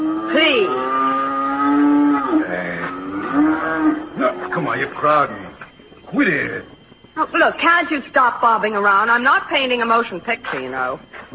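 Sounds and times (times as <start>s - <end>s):
cow mooing: 0.0s - 4.9s
speech: 4.9s - 11.3s.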